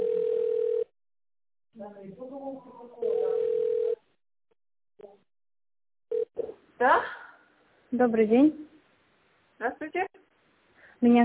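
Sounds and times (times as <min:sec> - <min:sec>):
telephone line ringing tone while a call is being connected: 0:00.0 - 0:00.9, 0:03.0 - 0:04.0, 0:06.1 - 0:06.5
speech: 0:01.8 - 0:03.2, 0:07.9 - 0:08.7, 0:09.6 - 0:10.2, 0:11.0 - 0:11.2.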